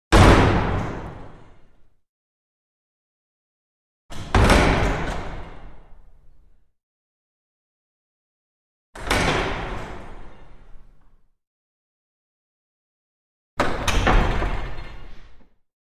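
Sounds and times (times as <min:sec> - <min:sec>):
small wooden chapel door crash slamming: 0:00.1 - 0:01.5, 0:04.1 - 0:05.8, 0:09.0 - 0:10.4, 0:13.6 - 0:15.3.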